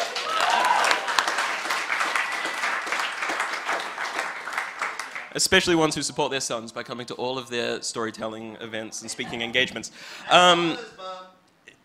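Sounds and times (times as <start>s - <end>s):
crowd applauding: 0.0s - 5.8s
speech: 5.3s - 11.1s.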